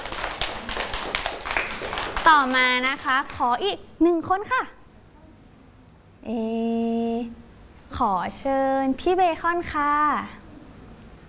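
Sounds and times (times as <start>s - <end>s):
small group of children clapping: 0.0s - 3.5s
speech: 2.3s - 4.8s, 6.2s - 10.4s.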